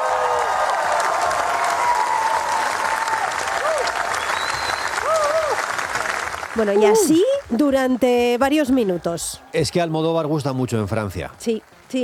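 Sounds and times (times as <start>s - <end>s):
large crowd applauding after a film screening: 0.0s - 12.0s
whistles: 4.1s - 5.4s
speech: 6.6s - 12.0s.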